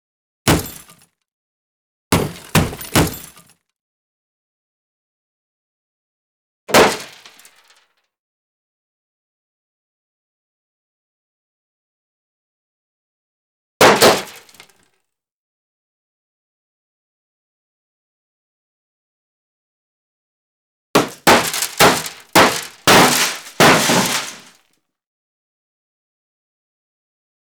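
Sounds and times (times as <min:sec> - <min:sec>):
bullet impacts on metal: 0:00.5 - 0:01.0, 0:02.2 - 0:03.5, 0:21.0 - 0:24.5.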